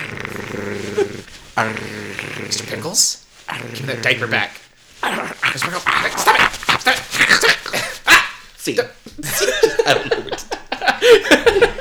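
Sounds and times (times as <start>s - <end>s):
dog growling: 0.0s - 8.6s
speech: 0.6s - 6.5s, 8.7s - 10.4s
laughter: 6.1s - 8.4s, 9.2s - 11.8s.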